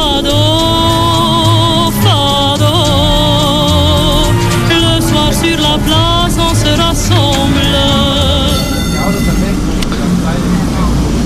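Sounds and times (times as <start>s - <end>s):
old yellow tram rumbling along its rails in Lisbon Portugal: 0.0s - 11.2s
loud high metallic squeal of old tram wheels: 3.9s - 11.2s.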